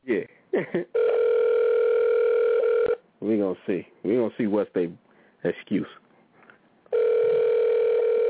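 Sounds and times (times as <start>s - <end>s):
buzzing phone ringback tone: 1.0s - 3.0s, 6.9s - 8.2s
person talking: 3.2s - 6.0s.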